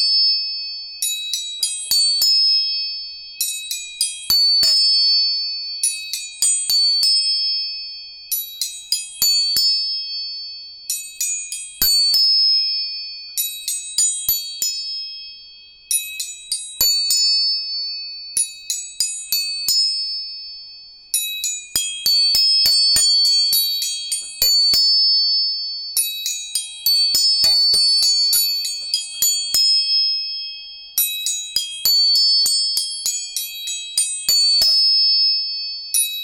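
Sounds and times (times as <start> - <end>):
tuning forks struck with metallic clicks and high ringing tones: 1.0 - 20.6, 21.2 - 36.2.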